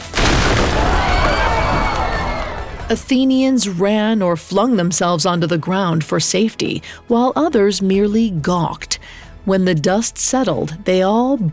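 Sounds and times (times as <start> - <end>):
wall bursting into purple and orange flames in a blast: 0.0 - 3.1
speech: 2.9 - 11.5.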